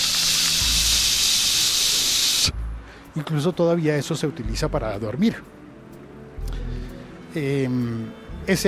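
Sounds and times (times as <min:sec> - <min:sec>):
broadband hiss like analog TV static: 0:00.0 - 0:03.1
speech: 0:03.2 - 0:05.6, 0:07.4 - 0:08.6.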